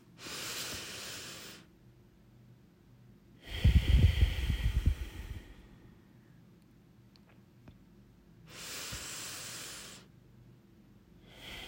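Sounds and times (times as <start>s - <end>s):
deep breath in and out during a guided relaxation exercise: 0.2s - 1.7s, 3.4s - 6.3s, 8.5s - 10.1s, 11.2s - 11.6s.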